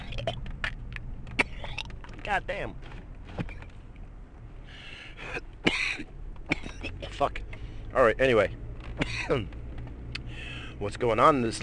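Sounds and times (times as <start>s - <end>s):
speech: 2.3s - 3.6s, 7.2s - 8.6s, 9.3s - 9.6s, 10.8s - 11.6s
raspy breaths and throaty sputters: 4.6s - 5.4s, 10.2s - 10.8s
person coughing harshly: 5.2s - 7.2s.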